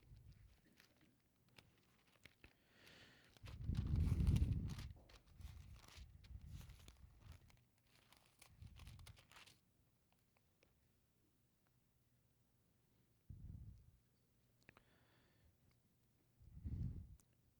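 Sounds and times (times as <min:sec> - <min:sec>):
many Bible pages turning: 0:00.2 - 0:09.6.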